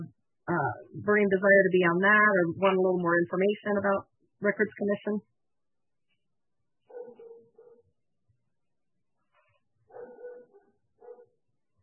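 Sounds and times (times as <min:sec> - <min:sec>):
speech: 0:00.0 - 0:05.4
dog yappy barking: 0:06.9 - 0:07.9, 0:09.9 - 0:11.4.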